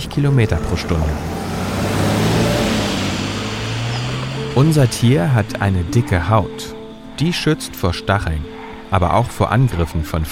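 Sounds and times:
car engine accelerating past: 0.0s - 7.4s
speech: 0.2s - 1.4s, 4.6s - 10.2s.

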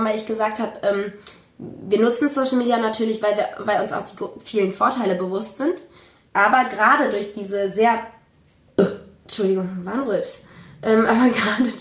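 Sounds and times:
speech: 0.0s - 8.2s, 8.8s - 11.7s
woman burping: 8.8s - 9.2s.

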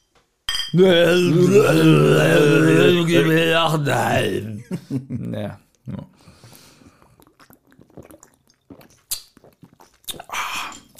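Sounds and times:
glass cola bottles clinking together in a toast: 0.5s - 0.9s
speech: 0.7s - 6.2s
low steady vocal hum: 0.8s - 4.8s.

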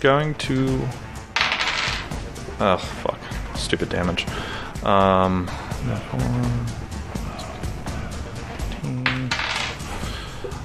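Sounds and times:
speech: 0.0s - 1.1s, 2.6s - 6.8s, 8.8s - 9.1s
dice tumbling and clattering across a hard tabletop: 1.4s - 2.1s, 9.0s - 9.8s.

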